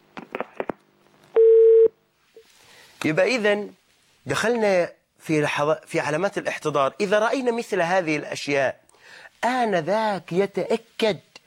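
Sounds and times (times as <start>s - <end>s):
telephone tone as a caller connects to a call-in line: 1.4s - 1.9s
speech: 3.0s - 11.3s.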